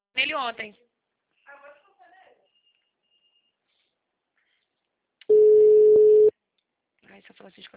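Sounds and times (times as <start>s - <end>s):
speech: 0.2s - 0.9s, 7.2s - 7.7s
telephone busy tone after a dropped call: 5.3s - 6.3s.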